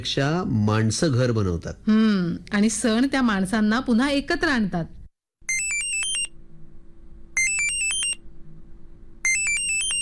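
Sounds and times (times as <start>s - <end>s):
speech: 0.0s - 5.0s
phone ringtone for an incoming video call: 5.5s - 6.3s, 7.4s - 8.2s, 9.2s - 10.0s.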